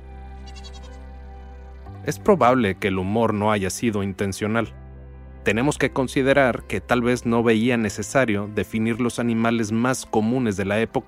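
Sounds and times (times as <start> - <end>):
goat bleating: 0.4 - 1.0
speech: 2.0 - 4.8, 5.4 - 11.0.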